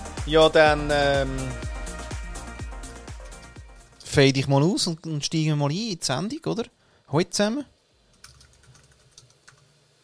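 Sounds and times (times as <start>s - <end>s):
speech: 0.3s - 1.6s, 4.1s - 7.7s
low hum: 3.3s - 10.0s
typing on a computer keyboard: 8.2s - 9.7s.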